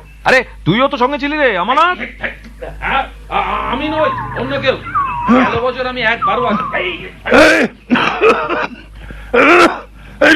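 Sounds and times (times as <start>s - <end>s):
speech: 0.2s - 10.3s
person with a persistent cough coughing harshly: 8.0s - 10.3s.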